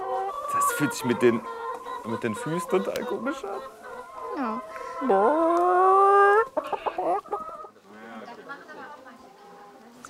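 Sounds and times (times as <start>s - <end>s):
chicken squawking and clucking while held in someone's arms: 0.0s - 7.8s
speech: 0.8s - 3.8s, 4.4s - 6.2s.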